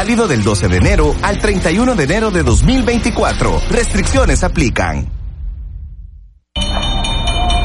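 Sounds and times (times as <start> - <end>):
speech: 0.0 - 5.2
garbage truck bell ringing: 6.6 - 7.6.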